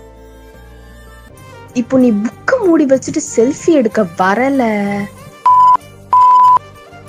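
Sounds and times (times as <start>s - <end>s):
speech: 1.8s - 5.2s
censorship bleeps over swear words: 5.5s - 6.6s.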